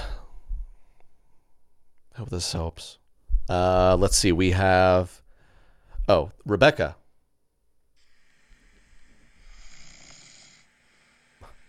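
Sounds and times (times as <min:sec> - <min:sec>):
speech: 0:02.2 - 0:05.2, 0:06.1 - 0:07.0
man snoring: 0:08.0 - 0:11.6.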